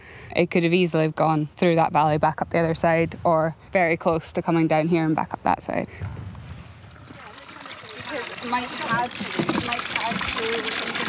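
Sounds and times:
wind: 0.0 - 11.0
speech: 0.4 - 6.2, 8.4 - 10.9
water poured into backpack sprayers at a national park fire: 6.7 - 11.0.

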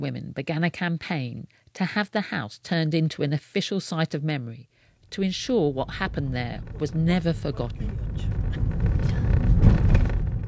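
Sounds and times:
speech: 0.0 - 8.4
car engine rumble driving toward a house on a quiet street: 5.0 - 10.4
car road noise: 5.1 - 10.4.

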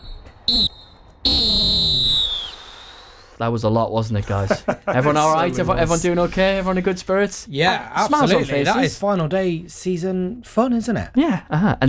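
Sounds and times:
referee's halftime whistle blasts: 0.0 - 3.0
speech: 0.5 - 1.4, 3.4 - 11.8
laughter: 4.2 - 6.9, 7.6 - 9.0.

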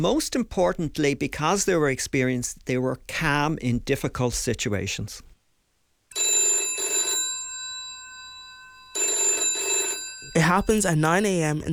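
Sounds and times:
speech: 0.0 - 5.3, 10.4 - 11.7
loud telephone bell ringing at a headquarters: 6.1 - 11.2.

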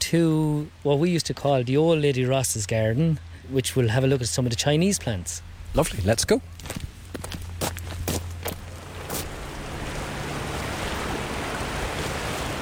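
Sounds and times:
speech: 0.1 - 6.8
crunching footsteps: 5.8 - 9.5
river water rushing: 6.6 - 12.6.

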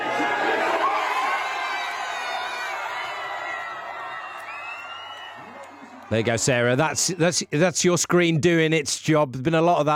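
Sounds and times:
large crowd watching a screen cheering and shouting at final whistle: 0.0 - 7.6
speech: 6.1 - 9.9.

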